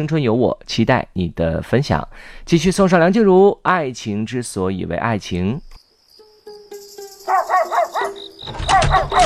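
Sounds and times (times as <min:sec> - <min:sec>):
speech: 0:00.0 - 0:05.7
dog whining: 0:07.3 - 0:09.2.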